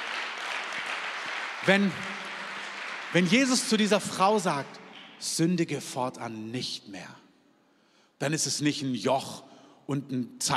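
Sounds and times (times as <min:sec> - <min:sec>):
crowd applauding: 0:00.0 - 0:05.2
speech: 0:01.6 - 0:02.1, 0:03.1 - 0:07.2, 0:08.2 - 0:10.5.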